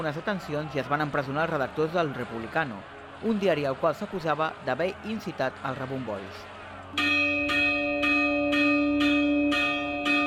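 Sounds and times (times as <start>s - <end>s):
speech: 0.0s - 7.4s
church bells ringing an alarm peal: 7.0s - 10.2s.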